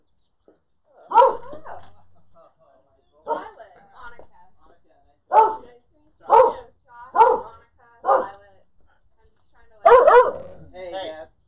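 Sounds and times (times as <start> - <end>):
dog barking: 1.1 - 2.0, 3.2 - 3.6, 5.3 - 5.7, 6.3 - 8.4, 9.8 - 10.6.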